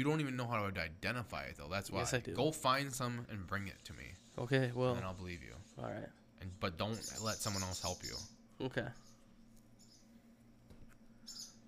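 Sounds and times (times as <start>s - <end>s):
speech: 0.0s - 9.1s
steady low hum: 0.0s - 11.6s
high-pitched bird chirp: 6.4s - 10.2s, 11.2s - 11.6s.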